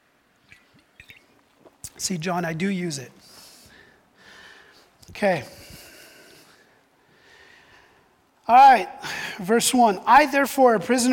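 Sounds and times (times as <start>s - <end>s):
person sipping water from a bottle: 0.4s - 2.0s
speech: 2.0s - 3.3s, 5.2s - 5.6s, 8.5s - 11.1s.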